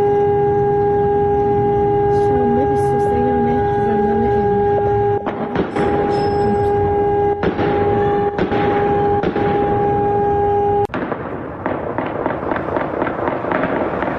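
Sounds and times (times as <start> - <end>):
wailing alarm tone: 0.0 - 10.9
gunfire: 5.2 - 6.6, 7.4 - 10.1, 10.9 - 14.1
explosions: 5.2 - 14.1.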